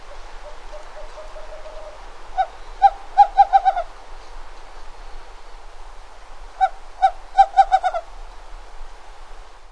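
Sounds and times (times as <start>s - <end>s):
Western screech-owl song of low hoots in North America: 0.0s - 3.9s, 6.6s - 8.1s
soft background hiss: 0.0s - 9.6s.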